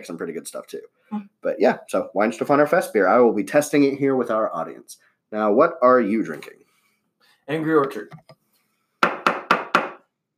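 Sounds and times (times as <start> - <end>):
speech: 0.0 - 6.6, 7.5 - 8.4
gavel striking wood: 9.0 - 10.1.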